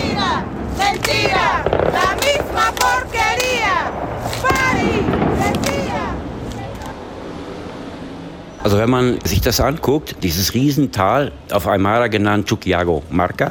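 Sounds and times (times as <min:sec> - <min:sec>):
firecracker bangs and pops at a street protest: 0:00.0 - 0:06.3
street protest crowd shouting and chanting in La Paz: 0:00.0 - 0:06.7
speech: 0:08.6 - 0:13.5.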